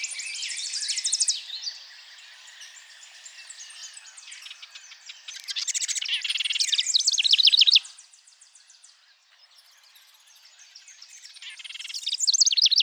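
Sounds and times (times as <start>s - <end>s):
house wren singing: 6.3s - 7.8s, 11.7s - 12.8s.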